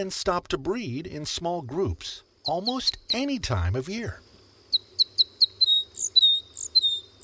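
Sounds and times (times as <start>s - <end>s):
speech: 0.0s - 4.3s
crossbill calls: 2.4s - 3.4s, 4.7s - 7.2s.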